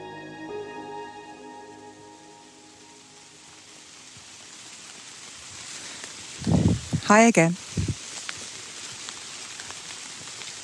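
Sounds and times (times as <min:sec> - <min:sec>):
dense rain hissing over the woods: 0:00.0 - 0:10.6
raindrops tapping leaves and surfaces in the woods: 0:02.4 - 0:10.6
speech: 0:07.1 - 0:07.6.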